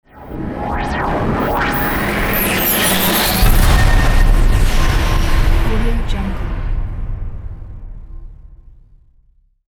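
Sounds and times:
impact logo sound: 0:01.4 - 0:09.5.

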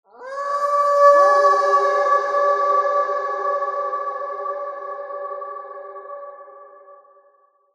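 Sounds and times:
wolf howling horror sound effect: 0:00.1 - 0:06.2.

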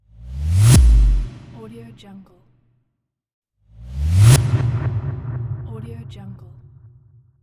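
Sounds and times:
bass swoosh: 0:00.0 - 0:01.8, 0:03.7 - 0:07.2.

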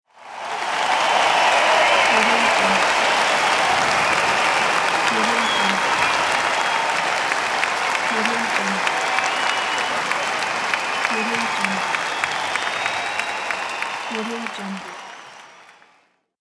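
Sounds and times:
crowd cheering: 0:00.0 - 0:16.3.

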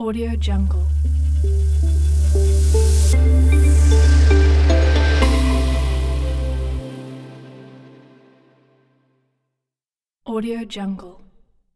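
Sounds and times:
clean intro logo sound: 0:00.0 - 0:08.7.

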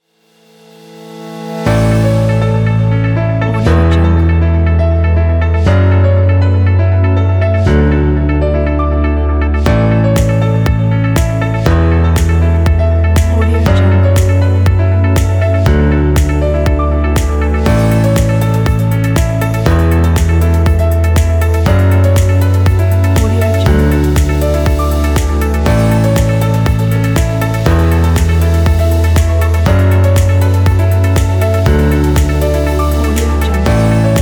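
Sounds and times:
elegant modern music: 0:00.5 - 0:34.2.

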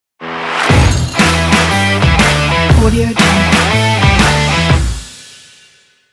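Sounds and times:
powerful indie rock logo jingle: 0:00.2 - 0:05.4.

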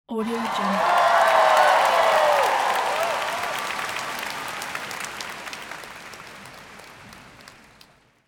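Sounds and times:
crowd cheering: 0:00.1 - 0:08.0.

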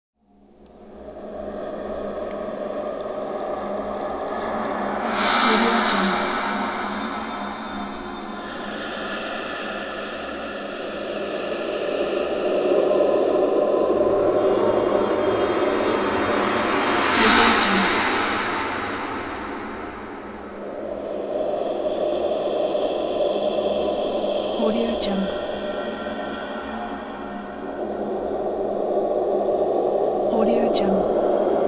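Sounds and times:
ghost city horror ambience: 0:00.3 - 0:31.6.

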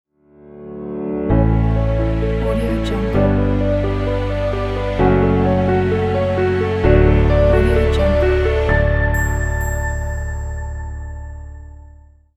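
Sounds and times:
piano ident: 0:00.2 - 0:12.2.

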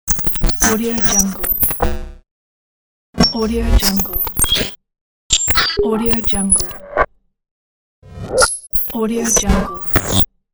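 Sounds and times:
glitch digital interference: 0:00.1 - 0:02.2, 0:03.2 - 0:04.7, 0:05.4 - 0:06.8, 0:08.1 - 0:10.3.

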